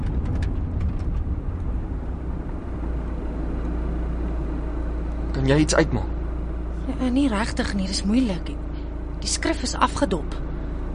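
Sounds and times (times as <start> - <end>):
car slowing to stop at a sign at night: 0.0 - 10.9
speech: 5.4 - 6.1, 7.0 - 8.6, 9.2 - 10.5.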